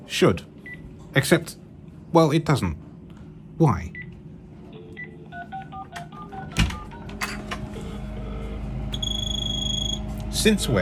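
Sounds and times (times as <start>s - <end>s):
speech: 0.1s - 0.5s, 1.2s - 2.8s, 3.6s - 4.0s, 10.4s - 10.8s
telephone ringing with unusual electronic tone: 4.8s - 10.0s.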